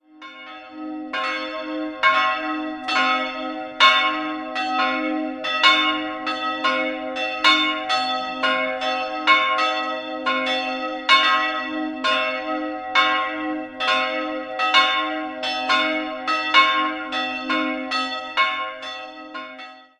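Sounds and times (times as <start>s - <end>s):
church bells of a branch church ringing: 0.0s - 19.9s.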